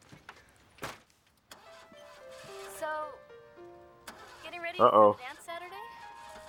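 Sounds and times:
flooded car engine cranking and failing to start: 1.4 - 6.4
speech: 4.8 - 5.4.

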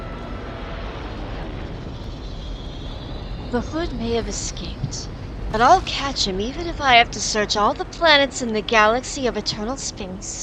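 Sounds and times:
rocket blasting off with roaring engine noise: 0.0 - 10.4
speech: 3.5 - 10.4.

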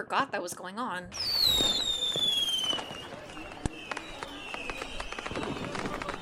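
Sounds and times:
speech: 0.0 - 2.0
firework whistle gliding downward: 1.1 - 6.1
faint murmur: 1.4 - 6.1.

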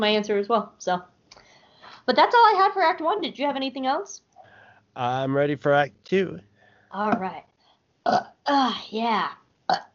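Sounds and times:
speech: 0.0 - 1.1, 2.1 - 4.3, 5.0 - 9.9
long drawn-out burps: 8.0 - 8.6, 9.7 - 9.9.

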